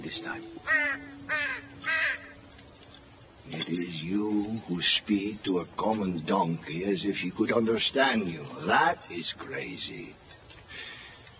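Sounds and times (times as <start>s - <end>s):
speech: 0.0s - 2.3s, 3.5s - 10.2s
faint steady hum: 0.0s - 11.3s
crow cawing from a tree: 0.6s - 2.4s.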